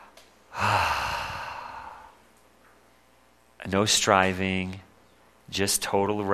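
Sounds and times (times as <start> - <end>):
deep breath and long airy exhale during prayerful rest: 0.0 - 2.2
speech: 3.7 - 4.9, 5.5 - 6.3.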